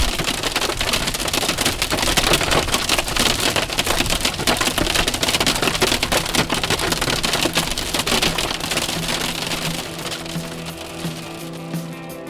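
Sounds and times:
hail pelting a car during a storm: 0.0 - 12.2.

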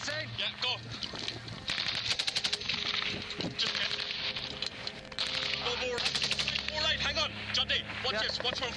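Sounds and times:
voices talking: 0.0 - 8.7
gunfire from a gun battle between soldiers and fighters: 1.7 - 4.4, 5.1 - 6.8.

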